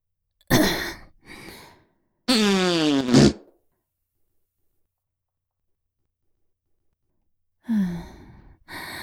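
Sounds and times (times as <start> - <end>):
loud farts: 2.3 - 3.4.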